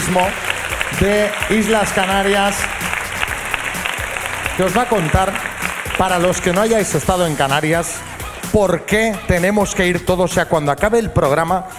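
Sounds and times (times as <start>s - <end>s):
crowd clapping: 0.0s - 7.7s
speech: 0.1s - 2.8s, 4.6s - 11.7s.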